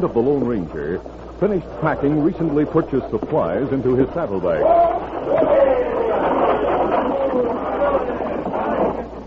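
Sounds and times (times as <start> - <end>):
speech: 0.0 - 6.1
crowd murmuring at a stagecoach station: 1.8 - 9.2.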